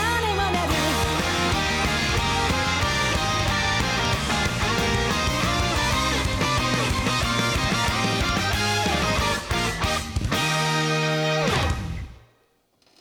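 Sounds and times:
loud dense Japanese rock band song: 0.0 - 12.2.

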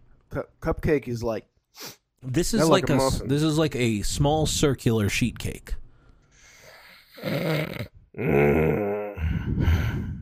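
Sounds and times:
speech: 0.4 - 5.8, 7.2 - 8.9
heavy raspy breathing into the microphone: 6.0 - 7.3, 9.1 - 10.2.

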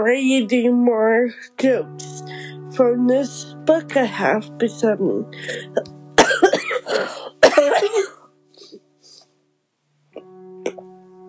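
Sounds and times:
speech: 0.0 - 6.0
person coughing hard: 5.5 - 8.2
small throat noises: 10.2 - 10.9.

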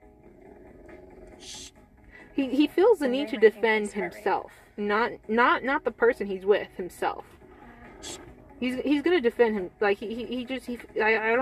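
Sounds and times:
dog growling: 0.2 - 1.7, 7.6 - 8.4
speech: 2.4 - 7.3, 8.0 - 11.4.

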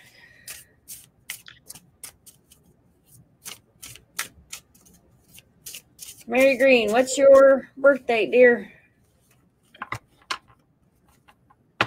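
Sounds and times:
shuffling and tapping a deck of cards: 0.4 - 7.5
speech: 6.3 - 8.8.

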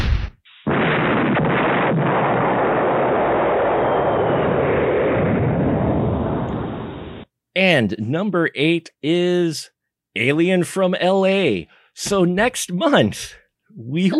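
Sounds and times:
cannon blast: 0.0 - 7.2
long dense roaring rumble after cannon blast: 0.7 - 7.2
speech: 7.6 - 14.1.

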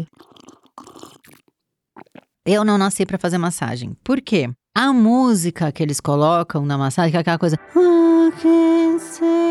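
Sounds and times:
wet slurping of hot coffee: 0.0 - 2.4
speech: 2.4 - 9.4.

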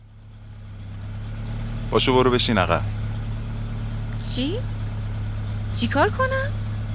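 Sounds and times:
pickup truck engine idling on a dirt track: 0.0 - 6.9
speech: 1.9 - 3.0, 4.3 - 4.8, 5.8 - 6.6.

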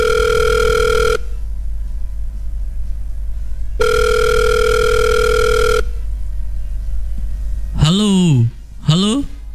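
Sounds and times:
telephone ringback tones on a call: 0.0 - 1.3, 3.8 - 6.0
low hum: 0.0 - 9.5
voice answering over the phone line: 7.8 - 9.4.

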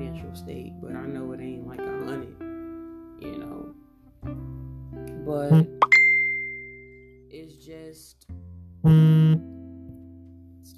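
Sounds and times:
speech: 0.2 - 2.4, 7.7 - 9.2
bright phone notification chime: 5.6 - 7.0.

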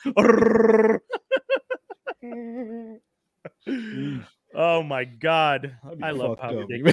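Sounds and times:
speech: 0.0 - 0.9, 5.0 - 6.9
person mimicking a Wookiee growl with a raspy throaty roar: 0.1 - 1.1.

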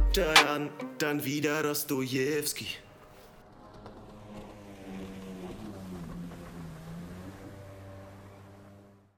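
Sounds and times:
speech: 0.2 - 2.9
jet ski engine droning: 3.4 - 9.1.

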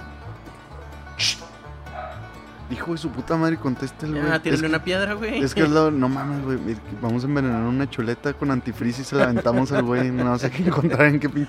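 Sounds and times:
dog barking: 0.7 - 2.3, 6.1 - 6.4
speech: 2.7 - 11.4
laughter: 8.7 - 11.4.

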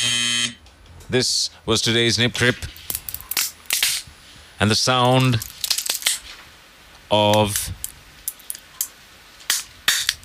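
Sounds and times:
speech: 1.1 - 2.8, 4.6 - 5.5, 7.1 - 7.8
nutcracker cracking nuts: 2.7 - 4.1, 5.0 - 6.3, 7.3 - 10.2.

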